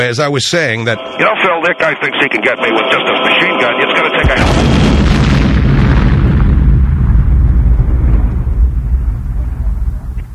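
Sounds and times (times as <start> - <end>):
speech: 0.0 - 5.1
explosion set off with blasting caps: 4.2 - 10.3.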